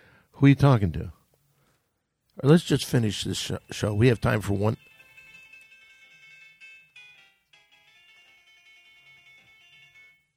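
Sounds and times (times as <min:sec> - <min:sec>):
speech: 0:00.4 - 0:01.2, 0:02.4 - 0:04.9
phone ringtone playing a tinny song melody: 0:03.8 - 0:10.3.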